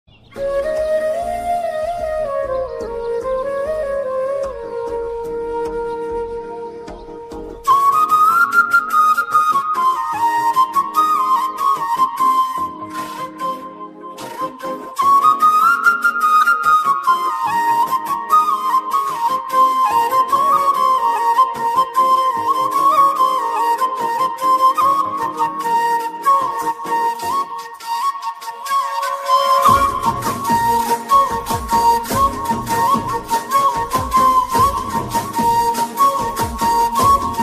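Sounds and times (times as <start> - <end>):
instrumental Tamil song: 0.1 - 37.4.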